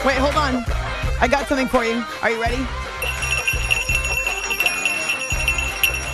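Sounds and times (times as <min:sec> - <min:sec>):
speech: 0:00.1 - 0:02.8
reindeer bell jingling: 0:03.0 - 0:06.1.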